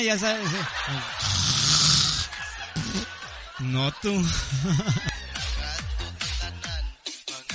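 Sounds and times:
speech: 0.0 - 1.5, 2.8 - 5.1
laughter: 0.0 - 7.1
loud snoring: 1.1 - 3.1.

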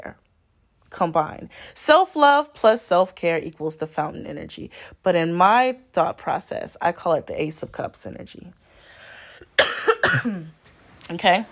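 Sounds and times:
speech: 1.0 - 8.6, 10.1 - 11.5
person coughing: 9.4 - 10.6.

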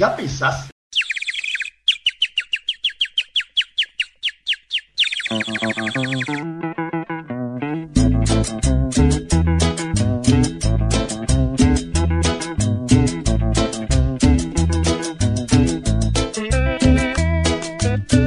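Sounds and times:
speech: 0.0 - 0.7, 5.3 - 7.0, 8.3 - 9.7
rapid high bird-like chirps: 0.9 - 6.4
bright rhythmic cumbia music with heavy bass: 7.9 - 18.2.

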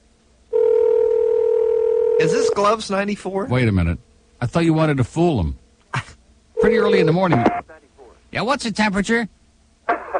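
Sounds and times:
telephone dialing tone: 0.6 - 2.2
speech: 2.2 - 9.4.

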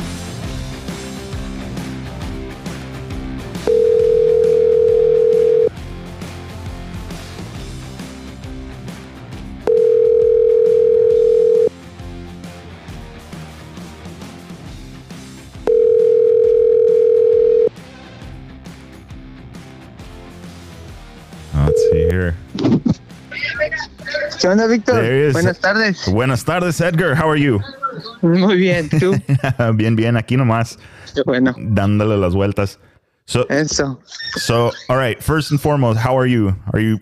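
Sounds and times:
telephone tones while placing a phone call: 3.7 - 5.7, 9.7 - 11.7, 15.7 - 17.7, 21.6 - 22.2
speech: 24.4 - 37.0
laughter: 27.0 - 30.0, 34.1 - 35.2.

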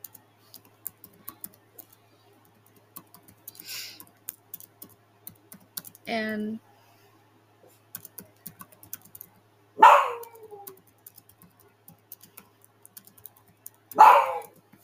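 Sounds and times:
faint keyboard typing clicks: 0.0 - 6.2, 7.9 - 9.4, 10.2 - 14.8
speech: 6.1 - 6.7
dog barking: 9.8 - 10.5, 14.0 - 14.6.

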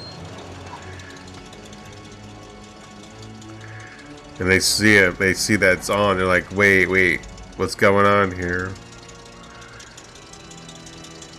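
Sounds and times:
car engine running: 0.0 - 11.3
worn squeaky belts squealing: 0.0 - 11.3
speech: 4.4 - 8.8.

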